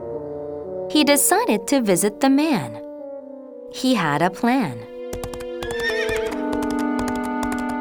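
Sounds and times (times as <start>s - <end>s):
speech: 0.9s - 2.8s, 3.7s - 4.9s
horse hooves clopping: 5.1s - 7.7s
horse whinnying: 5.6s - 6.4s.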